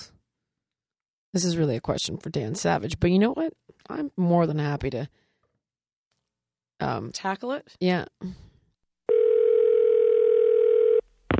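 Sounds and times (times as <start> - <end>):
speech: 1.3 - 5.2, 6.8 - 8.5
electronic ring tone over a phone line: 9.1 - 11.0.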